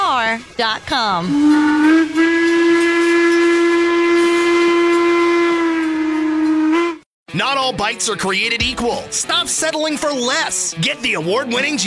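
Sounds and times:
speech: 0.4s - 2.9s, 7.3s - 11.8s
steam excursion train whistle in the Appalachian Mountains: 1.2s - 7.1s.

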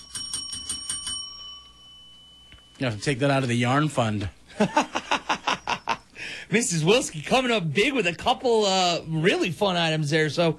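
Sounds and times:
small bell rung rapidly in a studio: 0.0s - 3.2s, 4.9s - 6.1s
speech: 2.8s - 5.0s, 6.2s - 10.5s
laughter: 4.5s - 6.1s.

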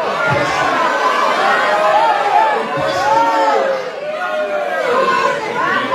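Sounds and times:
agitated protest crowd shouting and yelling: 0.0s - 5.9s.

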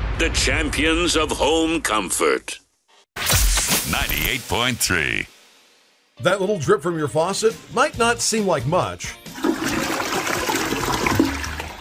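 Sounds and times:
speech: 0.2s - 2.6s, 3.2s - 5.4s, 6.2s - 9.4s
water rushing through a running toilet: 9.3s - 11.7s.

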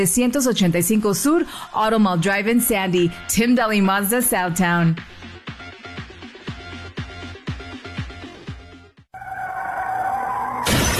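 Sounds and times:
speech: 0.0s - 5.2s
rhythmic beat: 5.2s - 8.9s
sustained screech: 9.2s - 10.9s
car crash with shattering glass: 10.5s - 10.9s.

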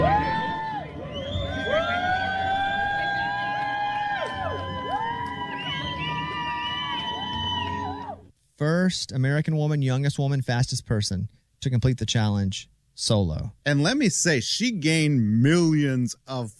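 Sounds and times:
crowd cheering and shouting at a finish line: 0.0s - 8.3s
speech: 8.6s - 16.5s.

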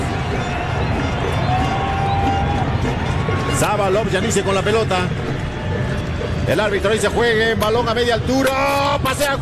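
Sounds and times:
large stadium crowd cheering: 0.0s - 9.3s
speech: 3.7s - 5.3s, 6.5s - 9.3s.

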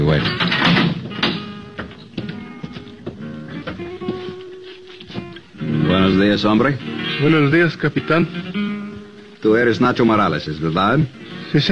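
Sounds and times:
heavy steel grill door clanking and rattling open: 0.0s - 2.1s
speech: 0.1s - 0.5s, 6.3s - 8.6s, 9.4s - 11.7s
knocks and thuds: 0.2s - 4.4s.

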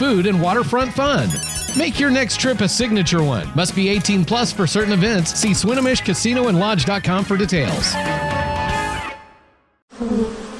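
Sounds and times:
speech: 0.0s - 8.4s
wasps buzzing at a nest above a front door: 1.3s - 1.9s.

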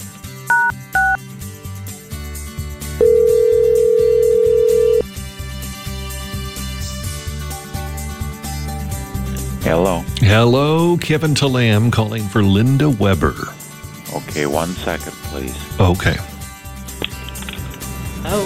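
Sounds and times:
radio music bed: 0.0s - 18.4s
touch-tone dialing beeps of a radio host phoning a listener: 0.5s - 1.2s, 3.0s - 5.0s
speech: 10.2s - 13.6s, 14.4s - 16.3s.

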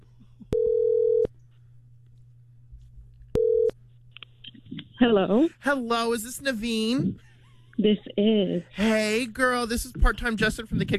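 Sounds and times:
faint low hum: 0.0s - 10.9s
telephone ringback tone for an outgoing call: 0.5s - 1.3s, 3.4s - 3.7s
speech: 5.0s - 10.9s.

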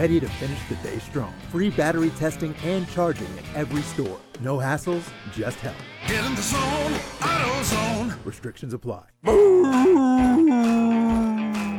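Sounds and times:
speech: 0.0s - 11.2s
dog howling: 9.3s - 11.7s.

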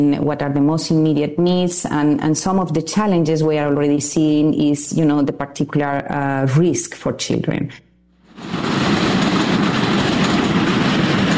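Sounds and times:
speech: 0.0s - 7.8s
train rumbling overhead with wheels and rail noise: 8.3s - 11.3s.

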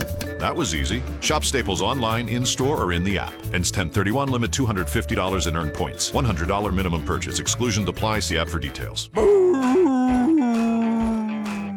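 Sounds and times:
speech: 0.4s - 9.5s
dog howling: 9.2s - 11.7s.

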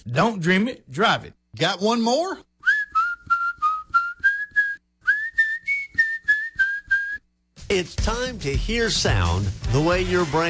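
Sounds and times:
speech: 0.0s - 2.5s, 7.7s - 10.4s
person whistling short high notes: 2.6s - 7.3s.

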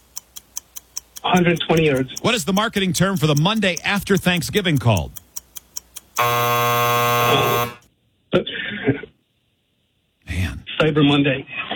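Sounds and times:
speech: 1.2s - 5.2s, 6.2s - 9.0s, 10.8s - 11.7s
loud harsh game show buzzer: 6.2s - 7.9s.

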